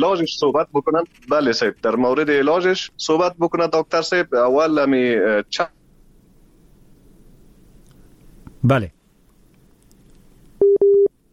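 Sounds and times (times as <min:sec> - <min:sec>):
speech: 0:00.0 - 0:05.8, 0:08.6 - 0:09.0
telephone busy tone after a dropped call: 0:10.6 - 0:11.1.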